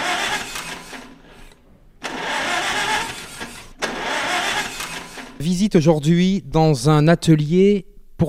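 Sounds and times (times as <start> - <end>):
old diesel tractor engine cranking and starting in a school workshop in Neuvic, Corrèze, France: 0.0 - 5.8
speech: 5.4 - 8.2.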